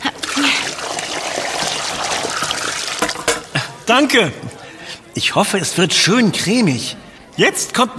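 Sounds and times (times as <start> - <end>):
cooking water pouring out of a pot: 0.1 - 3.5
speech: 3.9 - 4.5, 5.2 - 7.9.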